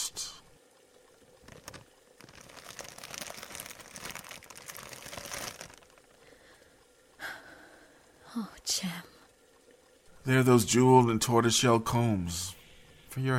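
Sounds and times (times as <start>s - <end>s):
paper crinkling as a gift package is unwrapped: 1.4s - 6.2s
speech: 8.4s - 9.1s, 10.3s - 12.6s, 13.2s - 13.3s.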